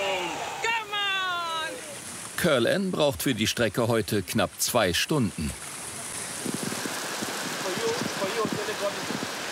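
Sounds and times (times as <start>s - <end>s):
heavy tropical downpour: 0.0s - 9.5s
speech: 2.4s - 5.6s.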